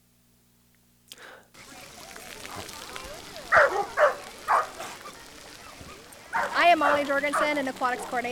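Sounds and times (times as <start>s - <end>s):
faint voices murmuring: 1.5s - 8.3s
water splashing in an outdoor swimming pool: 1.6s - 8.3s
dog barking at an outdoor swimming pool: 3.5s - 5.0s, 6.3s - 7.7s
speech: 6.8s - 8.3s.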